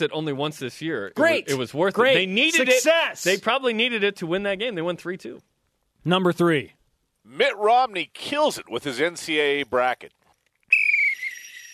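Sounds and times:
speech: 0.0s - 10.2s
shrill whistle blast: 10.7s - 11.7s.

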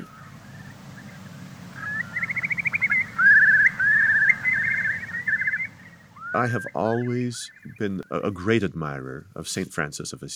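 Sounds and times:
Eurasian curlew bubbling song: 0.0s - 8.2s
speech: 6.4s - 10.3s.

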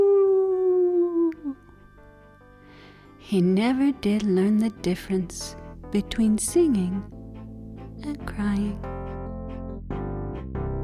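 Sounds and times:
human voice imitating a coyote howl: 0.0s - 1.6s
speech: 3.2s - 7.2s, 8.0s - 9.0s.

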